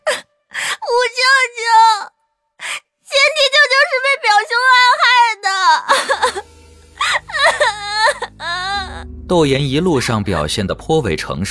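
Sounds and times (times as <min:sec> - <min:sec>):
girl bursting into tears, acted crying: 0:00.0 - 0:02.1, 0:04.0 - 0:09.0
speech: 0:09.3 - 0:11.4.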